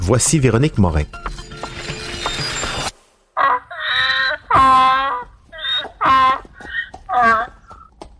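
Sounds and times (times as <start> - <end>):
speech: 0.1 - 1.5
donkey braying in rasping hee-haw cycles: 3.4 - 7.9.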